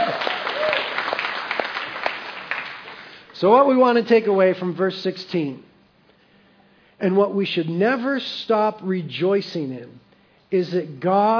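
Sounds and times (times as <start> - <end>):
audience applause: 0.0 - 3.2
speech: 3.4 - 5.7, 7.0 - 11.3.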